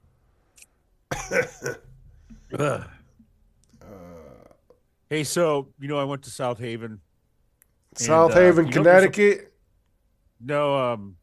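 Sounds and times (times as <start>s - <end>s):
harsh coughs: 1.1s - 3.1s
rough throat clearing: 1.1s - 3.2s
speech: 1.3s - 1.9s, 2.5s - 3.0s, 5.1s - 7.0s, 7.9s - 9.5s, 10.4s - 11.2s.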